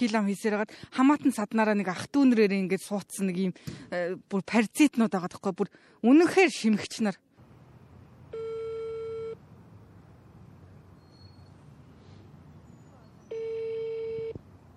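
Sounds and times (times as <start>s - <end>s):
speech: 0.0s - 7.3s
telephone ringing tone of an unanswered call: 8.3s - 9.4s, 13.3s - 14.4s
faint hiss: 9.4s - 13.0s.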